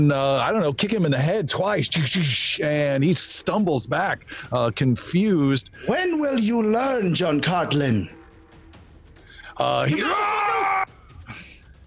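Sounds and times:
speech: 0:00.0 - 0:08.2, 0:09.6 - 0:10.6
character voice screaming: 0:09.9 - 0:10.9.

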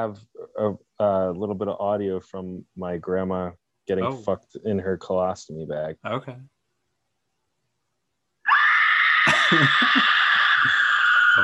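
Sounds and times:
speech: 0:00.0 - 0:06.5, 0:09.5 - 0:10.2
person screaming: 0:08.5 - 0:11.4.

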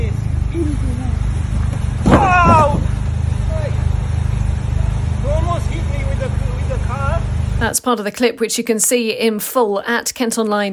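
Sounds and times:
car engine rumbling: 0:00.0 - 0:07.8
sharp thud of a car hitting a cyclist: 0:01.7 - 0:03.0
people shouting: 0:02.0 - 0:02.9
speech: 0:07.6 - 0:10.7.

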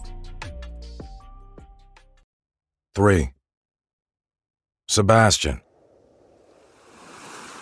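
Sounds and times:
speech: 0:03.0 - 0:03.4, 0:04.9 - 0:05.7
ocean surf rushing onto the shore: 0:05.8 - 0:07.6.

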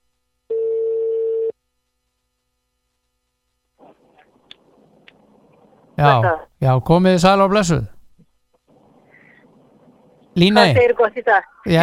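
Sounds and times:
telephone line ringing: 0:00.5 - 0:01.5
speech: 0:06.0 - 0:08.0, 0:10.4 - 0:11.8.

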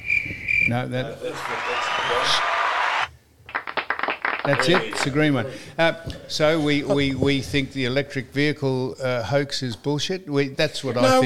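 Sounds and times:
speech: 0:00.7 - 0:02.6, 0:04.4 - 0:11.2
canned applause from a sound-effect button: 0:01.2 - 0:05.3.

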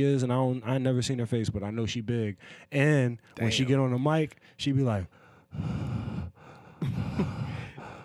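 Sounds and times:
speech: 0:00.0 - 0:06.1, 0:06.8 - 0:07.4
voice imitating heavy wheezy mouth breathing into microphone: 0:05.1 - 0:08.0.

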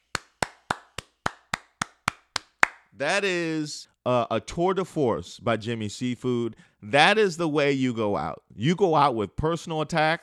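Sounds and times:
single pair of hands clapping sharply: 0:00.0 - 0:02.9
speech: 0:03.0 - 0:10.2.

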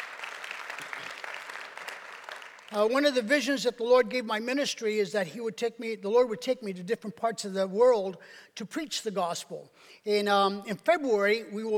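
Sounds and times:
audience applause: 0:00.0 - 0:02.7
speech: 0:02.7 - 0:11.7.

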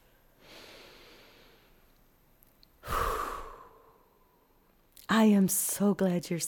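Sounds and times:
deep breath taken during singing exercise: 0:00.0 - 0:01.9, 0:02.8 - 0:04.4
speech: 0:05.1 - 0:06.4.

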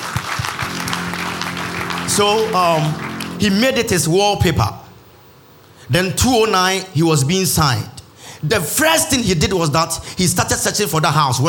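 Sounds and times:
church audience clapping hands in applause: 0:00.0 - 0:03.9
speech: 0:02.2 - 0:04.8, 0:05.9 - 0:11.4.

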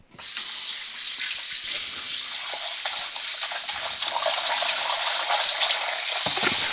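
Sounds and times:
tap water running into a bowl as the bowl is rinsed: 0:00.2 - 0:06.7.

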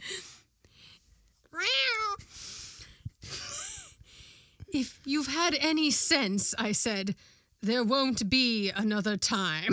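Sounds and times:
cat meowing: 0:01.5 - 0:02.2
speech: 0:04.8 - 0:09.6.

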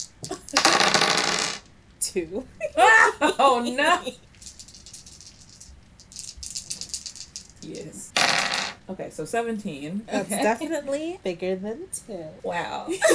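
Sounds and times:
dice including a d20 rolling on a hard tabletop: 0:00.0 - 0:01.8, 0:03.9 - 0:08.9
speech: 0:02.1 - 0:04.3, 0:08.9 - 0:13.1
laughter: 0:02.4 - 0:04.2, 0:12.9 - 0:13.1.

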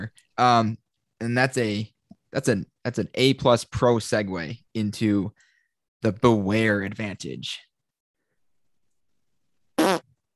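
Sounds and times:
speech: 0:00.0 - 0:05.4, 0:06.0 - 0:07.7
loud gassy fart: 0:09.8 - 0:10.2.

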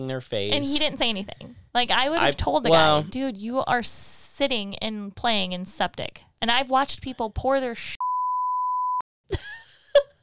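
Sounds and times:
speech: 0:00.0 - 0:08.0
censorship beep: 0:08.0 - 0:09.0.

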